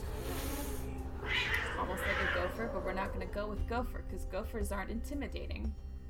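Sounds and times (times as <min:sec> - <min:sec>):
voice imitating a cat's hiss through clenched teeth: 0:00.1 - 0:01.0
speech: 0:01.8 - 0:05.9.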